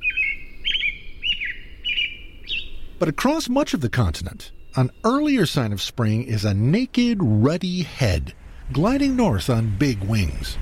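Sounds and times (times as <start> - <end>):
American Robin singing: 0.0 - 8.1
faint low rumble: 2.3 - 10.6
speech: 3.0 - 10.6.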